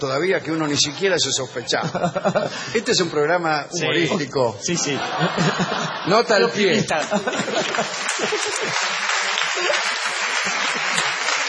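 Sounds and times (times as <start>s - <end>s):
speech: 0.0s - 11.2s
laughter: 1.5s - 3.2s, 3.8s - 11.4s
audience applause at a humorous show: 6.8s - 11.4s.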